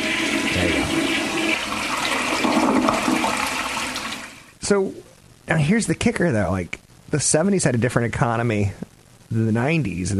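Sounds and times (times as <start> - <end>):
toilet flushing: 0.0 - 4.5
speech: 4.7 - 10.1.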